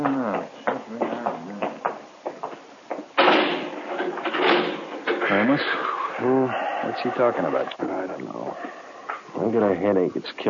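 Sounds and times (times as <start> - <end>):
voices: 0.0 - 1.9, 5.1 - 10.4
jail cell door being shut and locked: 3.2 - 5.4
loud broad metallic clattering of a jail cell door: 3.2 - 5.9
speech: 5.5 - 8.8, 9.4 - 10.4.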